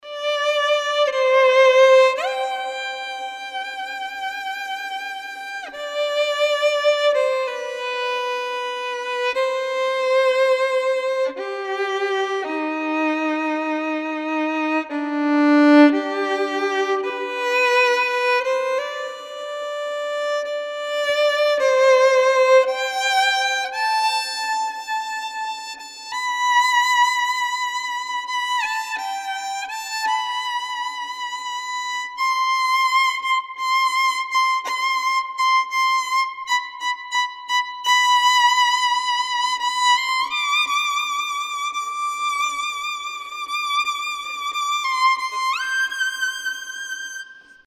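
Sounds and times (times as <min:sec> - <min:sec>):
somber solo violin with ensemble: 0:00.0 - 0:47.6.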